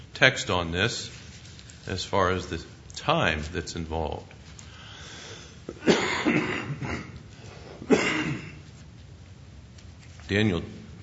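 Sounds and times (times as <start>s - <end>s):
speech: 0.2s - 1.2s, 1.8s - 4.4s, 10.3s - 11.0s
person coughing harshly: 5.7s - 7.2s, 7.8s - 8.6s.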